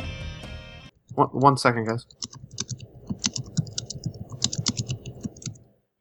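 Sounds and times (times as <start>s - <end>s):
speech: 1.2s - 2.5s
loud typing on a computer keyboard: 2.1s - 5.7s.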